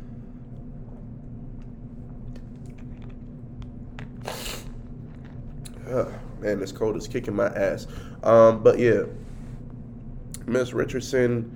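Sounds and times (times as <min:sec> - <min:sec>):
steady low hum: 0:00.0 - 0:11.5
mouth clicks: 0:04.0 - 0:04.8
slurping sip of a drink: 0:04.0 - 0:05.8
speech: 0:05.9 - 0:09.2, 0:10.5 - 0:11.5.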